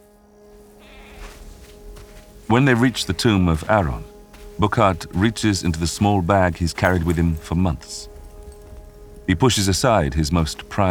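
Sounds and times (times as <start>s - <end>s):
goat bleating while led by the scruff of its neck: 0.8s - 1.4s
speech: 2.5s - 8.1s, 9.3s - 10.8s.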